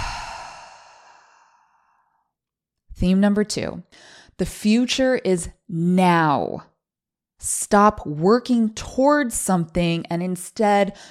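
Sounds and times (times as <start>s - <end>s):
long breathy exhale through the mouth in a guided deep-breathing exercise: 0.0s - 2.0s
speech: 3.0s - 6.7s, 7.4s - 11.0s.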